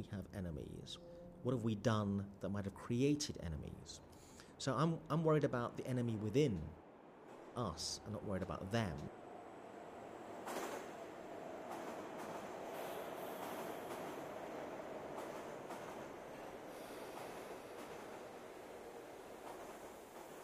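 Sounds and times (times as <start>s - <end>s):
speech: 0.0s - 6.8s, 7.6s - 9.2s
subway train rumbling along the tracks: 4.5s - 20.4s
subway train wheels clacking over rail joints: 10.4s - 20.4s.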